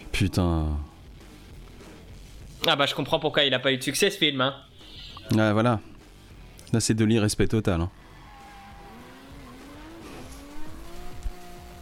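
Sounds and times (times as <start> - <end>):
speech: 0.2 - 0.9, 2.6 - 4.7, 5.3 - 5.9, 6.7 - 8.0
Mustang car tires squealing: 7.9 - 11.7
Mustang car with modified Japanese Nissan engine revving through gear changes: 7.9 - 11.7.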